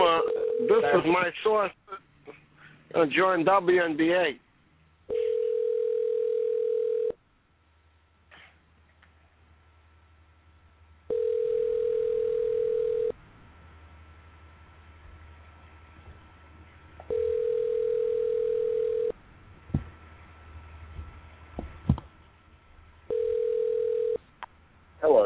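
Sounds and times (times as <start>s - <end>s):
telephone line tone while placing a call to a cell phone: 0.1s - 1.0s, 5.1s - 7.2s, 11.1s - 13.2s, 17.1s - 19.2s, 23.1s - 24.2s
speech: 1.0s - 1.8s, 2.9s - 4.4s.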